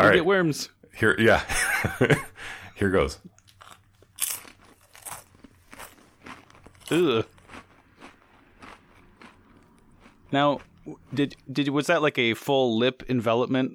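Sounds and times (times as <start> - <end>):
speech: 0.0 - 3.4, 6.9 - 7.4, 10.3 - 13.7
laughter: 1.0 - 3.3
muffled chewing of a crunchy snack past its expiration date: 3.3 - 11.8.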